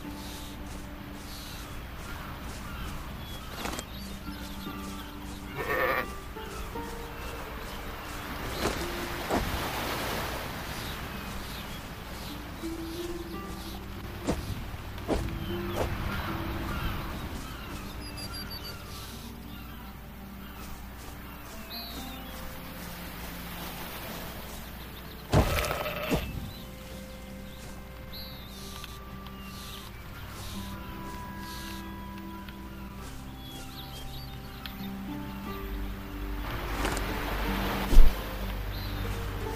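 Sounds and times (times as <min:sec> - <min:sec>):
steady hiss of noise: 0:00.0 - 0:39.5
sheep bleating: 0:05.5 - 0:06.2, 0:25.4 - 0:26.3.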